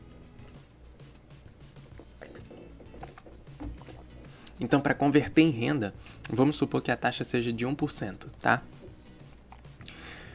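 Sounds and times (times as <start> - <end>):
person sipping water: 1.9 - 4.6, 8.8 - 10.0
swallowing gulp: 2.0 - 4.6
speech: 4.6 - 8.8.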